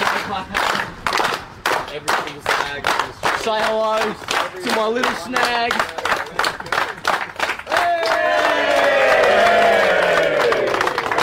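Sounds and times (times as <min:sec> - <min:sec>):
scattered clapping: 0:00.0 - 0:11.2
speech: 0:00.3 - 0:00.7, 0:02.0 - 0:08.8
crowd cheering and whooping: 0:07.7 - 0:11.0.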